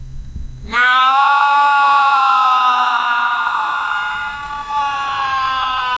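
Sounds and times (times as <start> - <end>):
person screaming: 0.7 - 5.9.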